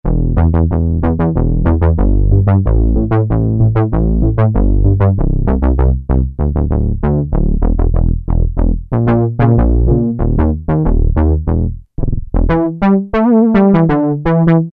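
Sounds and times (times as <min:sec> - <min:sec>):
Korg Poly-800 synthesizer bass: 0:00.0 - 0:14.7.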